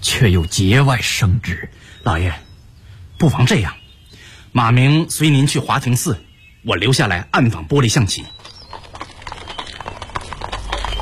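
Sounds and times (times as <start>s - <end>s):
speech: 0.1s - 2.5s, 3.2s - 3.8s, 4.5s - 8.4s
hooves of a horse-drawn carriage clip-clopping: 8.2s - 11.0s.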